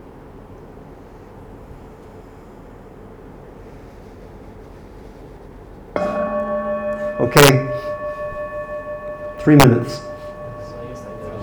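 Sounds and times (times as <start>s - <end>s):
meditation bell struck to start a session: 6.0s - 11.4s
speech: 7.2s - 7.7s, 9.4s - 10.1s.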